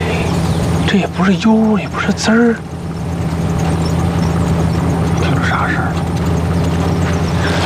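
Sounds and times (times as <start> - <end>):
car engine running with a steady low drone: 0.0 - 7.6
speech: 0.9 - 2.7.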